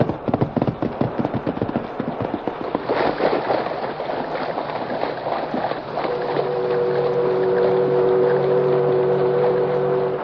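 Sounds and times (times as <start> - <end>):
horse plunging and splashing into river: 0.0 - 7.1
low even mechanical hum: 5.8 - 10.2.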